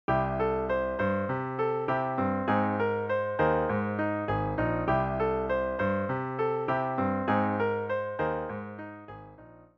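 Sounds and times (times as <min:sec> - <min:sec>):
piano vamp playing C and Ab add9 chords as a song intro: 0:00.1 - 0:09.7.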